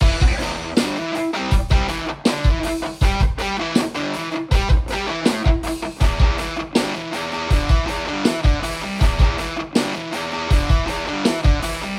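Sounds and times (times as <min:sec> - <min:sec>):
drums: 0:00.0 - 0:11.9
guitars: 0:00.0 - 0:11.9.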